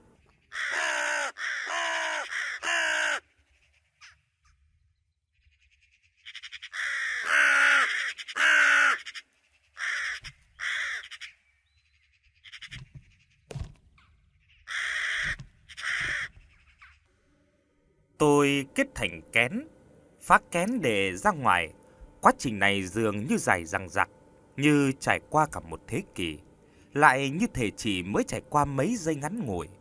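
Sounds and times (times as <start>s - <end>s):
unidentified bird crying mournfully in harsh hoarse caws: 0.3s - 4.2s, 5.8s - 11.5s, 12.4s - 13.2s, 14.5s - 17.0s
speech: 18.2s - 29.7s.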